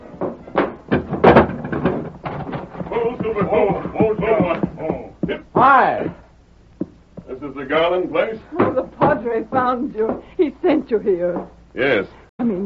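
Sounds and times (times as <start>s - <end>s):
wooden clunks and knocks of a heavy bar being lifted: 0.2s - 6.2s, 8.6s - 10.2s
speech: 3.3s - 4.6s, 7.7s - 12.6s.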